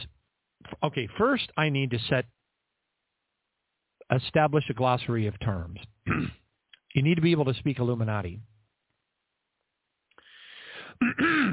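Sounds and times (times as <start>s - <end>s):
speech: 0.8s - 2.4s, 4.1s - 8.5s, 11.0s - 11.5s
person clearing throat: 6.1s - 6.4s, 11.0s - 11.5s.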